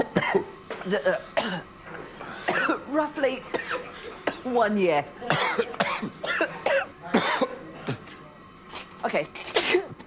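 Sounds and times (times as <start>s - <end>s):
person coughing harshly from chili fumes while making chilli sauce: 0.0s - 1.7s, 2.5s - 2.8s, 5.3s - 8.0s, 9.5s - 10.0s
speech: 0.4s - 1.7s, 2.7s - 5.8s, 9.1s - 9.5s.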